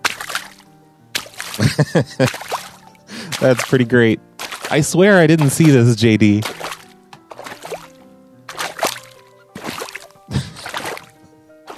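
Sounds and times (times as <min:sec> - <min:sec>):
footsteps splashing through shallow water: 0:00.0 - 0:11.7
people laughing: 0:01.6 - 0:02.4, 0:10.3 - 0:10.8
speech: 0:01.6 - 0:02.6, 0:03.4 - 0:06.6.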